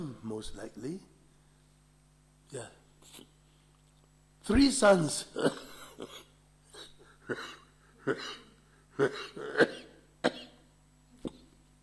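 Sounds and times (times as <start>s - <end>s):
speech: 0.2s - 1.2s, 2.5s - 3.3s, 4.5s - 8.4s, 9.0s - 10.4s
harsh coughing fit: 5.4s - 10.7s.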